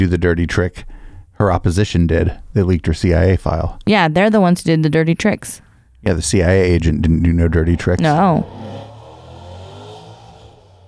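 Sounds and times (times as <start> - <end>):
speech: 0.0 - 8.8
car engine revving outside: 6.5 - 10.8.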